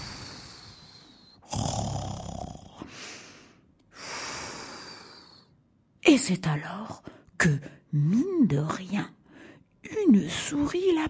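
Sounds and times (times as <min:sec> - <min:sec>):
bear snoring asleep in the woods: 0:00.0 - 0:02.9
speech: 0:06.1 - 0:09.2, 0:10.1 - 0:11.0.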